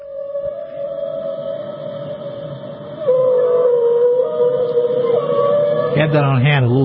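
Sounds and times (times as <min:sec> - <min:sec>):
whale vocalizations played as a sound effect: 0:00.0 - 0:06.8
speech: 0:06.0 - 0:06.8.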